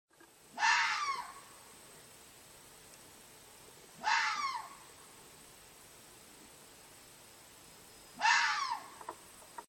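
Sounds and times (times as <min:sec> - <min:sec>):
fox barking: 0:00.5 - 0:01.4, 0:04.0 - 0:04.8, 0:08.2 - 0:08.9.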